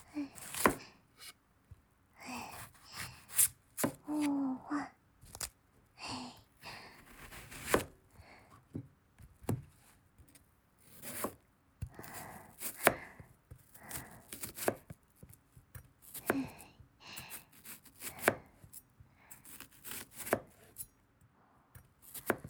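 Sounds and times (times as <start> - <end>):
knife chopping onions on a board: 0.4 - 1.3, 2.4 - 4.3, 7.0 - 7.9, 8.7 - 16.6, 17.2 - 20.9, 21.8 - 22.4
knife scraping on a board: 0.4 - 1.4, 2.5 - 4.0, 7.0 - 7.9, 10.8 - 11.4, 13.9 - 15.4, 16.0 - 16.3, 17.2 - 20.9, 22.0 - 22.4.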